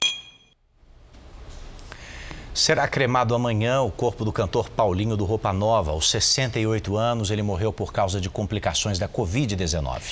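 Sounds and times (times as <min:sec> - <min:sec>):
glasses clinking in a toast: 0:00.0 - 0:00.6
speech: 0:02.6 - 0:10.1.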